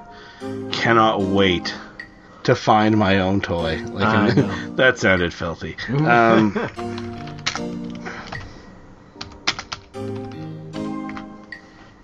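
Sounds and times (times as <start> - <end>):
speech: 0.4 - 8.1
person making drawn-out sing-song vocal sounds without clear words: 3.6 - 4.8
laughter: 3.8 - 4.8, 5.9 - 6.8
computer keyboard typing: 6.8 - 8.5, 9.2 - 11.6.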